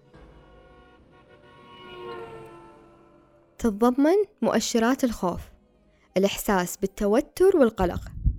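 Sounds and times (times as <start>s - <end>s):
speeding car horn honking: 0.0s - 3.6s
speech: 3.6s - 5.5s, 6.2s - 8.2s.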